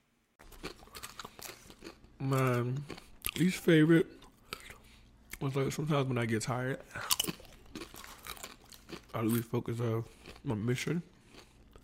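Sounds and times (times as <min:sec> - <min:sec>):
crisp food being bitten and chewed: 0:00.4 - 0:03.4, 0:06.9 - 0:11.8
speech: 0:02.2 - 0:04.2, 0:05.4 - 0:07.4, 0:09.2 - 0:11.2.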